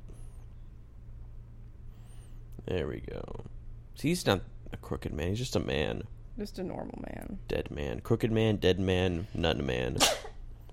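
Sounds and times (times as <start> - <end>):
speech: 2.6 - 10.4
single sharp breathy sneeze: 10.0 - 10.4.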